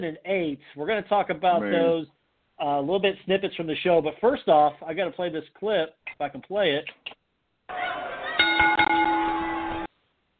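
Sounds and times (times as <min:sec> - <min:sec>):
speech: 0:00.0 - 0:07.1
bell ringing in a replayed recording: 0:08.4 - 0:09.5.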